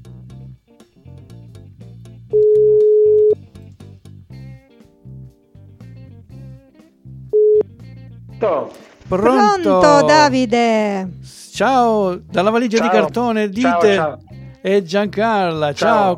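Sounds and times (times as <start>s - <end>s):
telephone ringback tone while a call is placed: 2.3s - 3.4s, 7.4s - 7.6s
speech: 8.4s - 16.1s.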